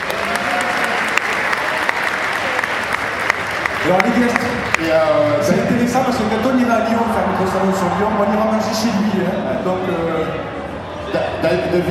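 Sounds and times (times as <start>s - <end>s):
crowd applauding: 0.0s - 9.2s
speech: 3.8s - 10.5s, 11.1s - 11.8s.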